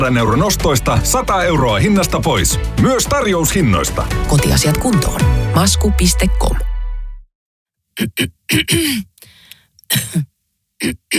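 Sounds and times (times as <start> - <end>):
speech: 0.0 - 6.7, 8.0 - 9.1, 9.9 - 11.1
person coughing harshly: 8.0 - 9.2, 9.9 - 11.1
breathy breathing: 8.9 - 9.8.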